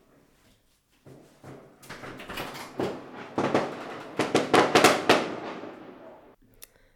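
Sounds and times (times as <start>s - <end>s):
fireworks exploding outside: 2.5s - 6.4s.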